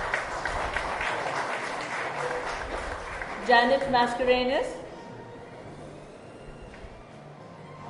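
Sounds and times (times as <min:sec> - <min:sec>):
live audience applause at a fado concert in an institute hall: 0:00.0 - 0:03.8
speech: 0:03.5 - 0:04.8.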